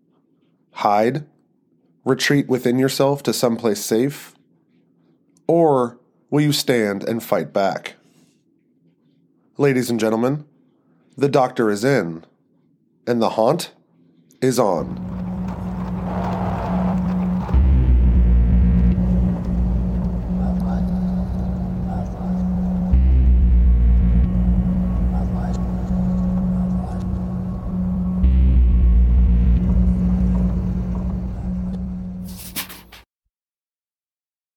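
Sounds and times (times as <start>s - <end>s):
speech: 0.8s - 1.3s, 2.0s - 4.4s, 5.5s - 8.0s, 9.6s - 10.5s, 11.2s - 12.3s, 13.0s - 13.8s, 14.4s - 15.2s
ship's new diesel engines sputtering to life and humming: 14.8s - 33.0s.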